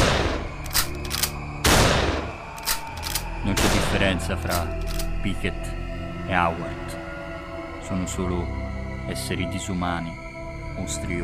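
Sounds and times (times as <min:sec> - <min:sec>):
Winchester rifle firing: 0:00.0 - 0:05.1
speech: 0:04.1 - 0:07.0, 0:07.9 - 0:10.2, 0:10.8 - 0:11.2.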